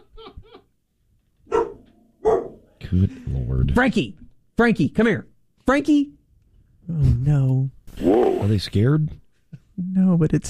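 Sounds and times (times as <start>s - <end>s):
dog barking at a cleanup crew: 1.5s - 2.7s
speech: 2.9s - 6.2s, 6.9s - 9.2s, 9.9s - 10.4s.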